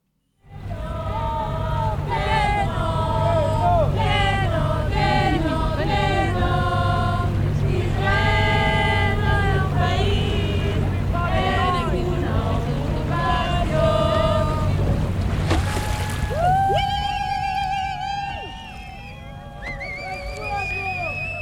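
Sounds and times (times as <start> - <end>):
steady low boat engine drone: 0.3 - 21.3
activists chanting slogans aboard boats: 0.5 - 14.9.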